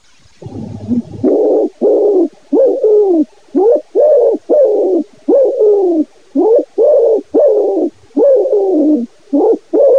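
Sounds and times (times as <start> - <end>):
Common wood pigeon cooing: 0.4 - 9.9.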